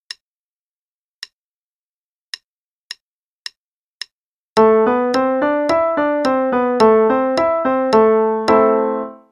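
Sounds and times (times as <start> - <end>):
A minor five-finger melodic pattern: 4.6 - 9.3.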